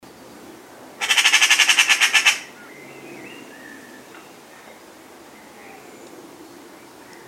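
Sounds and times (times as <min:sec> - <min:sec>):
Eurasian magpie Pica pica harsh rattle: 0:01.0 - 0:02.5.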